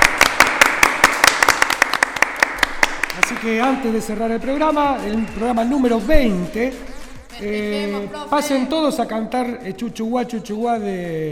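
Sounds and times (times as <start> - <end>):
applause from teachers honoring children: 0.0 - 3.6
speech: 3.2 - 11.3.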